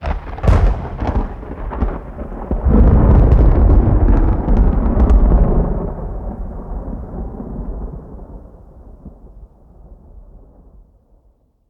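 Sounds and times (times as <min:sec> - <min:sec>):
volcano strike: 0:00.0 - 0:05.2.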